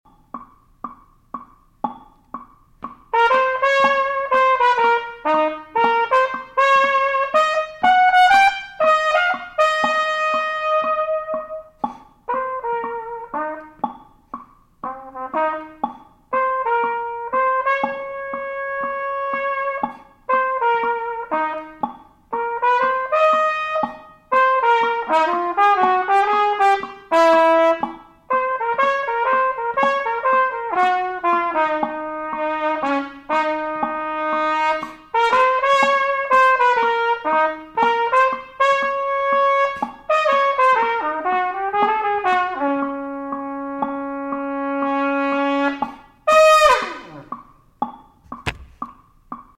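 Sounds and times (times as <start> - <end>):
jazz trumpet playing swing: 3.1 - 13.9, 14.8 - 47.4.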